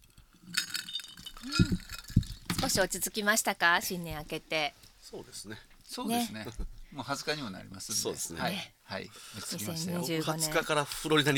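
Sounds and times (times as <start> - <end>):
glasses clinking in a toast: 0.5 - 2.5
speech: 1.4 - 1.8, 2.7 - 11.3.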